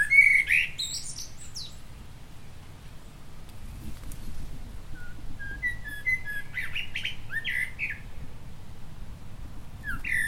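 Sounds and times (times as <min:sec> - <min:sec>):
common blackbird Turdus merula warbling: 0:00.0 - 0:01.8, 0:05.0 - 0:08.2, 0:09.8 - 0:10.2.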